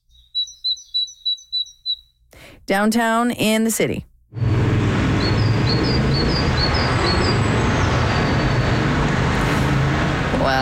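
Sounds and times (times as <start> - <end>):
small bird singing high thin notes: 0.0 - 2.2, 5.2 - 8.8
speech: 2.7 - 4.4
steady roar of heavy downtown city traffic with buses and cars: 4.4 - 10.6.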